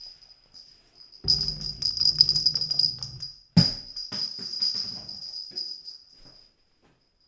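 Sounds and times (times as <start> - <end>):
rattle ball rolling from the left on a table: 1.2 - 5.4.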